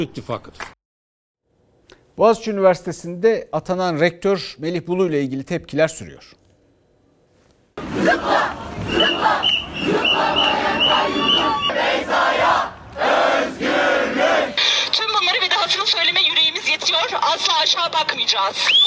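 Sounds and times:
speech: 0.0s - 0.8s, 2.2s - 6.4s, 7.8s - 13.6s, 15.2s - 18.8s
protest crowd chanting slogans at Boğaziçi University in Turkey: 7.8s - 14.6s.

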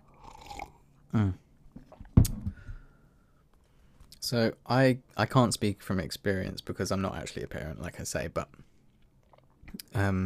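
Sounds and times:
person sipping tea from a cup: 0.1s - 0.8s
person swallowing: 0.1s - 2.4s
speech: 1.1s - 1.4s, 4.3s - 8.7s, 9.7s - 10.2s.

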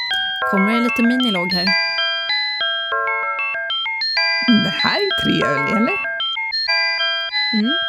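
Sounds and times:
old music box melody: 0.0s - 6.2s
speech: 0.4s - 2.0s, 4.5s - 6.0s, 7.5s - 7.8s
voice murmuring: 4.4s - 6.0s, 7.6s - 7.8s.

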